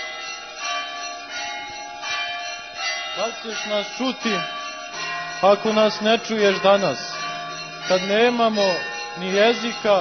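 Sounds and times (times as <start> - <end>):
church bells ringing: 0.0 - 9.9
speech: 3.2 - 4.6, 5.4 - 7.1, 7.9 - 9.9.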